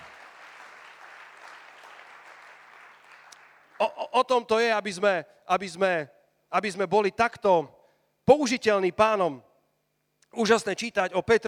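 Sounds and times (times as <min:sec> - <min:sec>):
crowd applauding in praise of the Lord: 0:00.0 - 0:03.9
speech: 0:03.8 - 0:09.5, 0:10.3 - 0:11.4.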